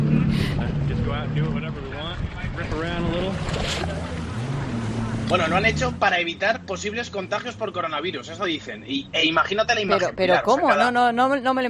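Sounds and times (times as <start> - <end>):
rushing wind: 0.0 - 5.6
jet ski engine droning on water: 0.0 - 10.1
speech: 5.3 - 11.6.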